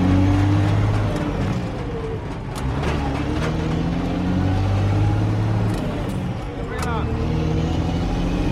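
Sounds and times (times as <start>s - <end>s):
green truck engine droning as it maneuvers and parks at a loading dock: 0.0s - 8.4s.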